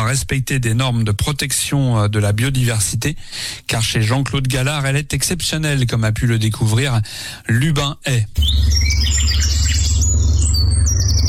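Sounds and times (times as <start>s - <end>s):
speech: 0.1s - 9.6s
birds singing on a rural property along a river: 8.4s - 11.2s
steady low rumble: 8.4s - 11.2s.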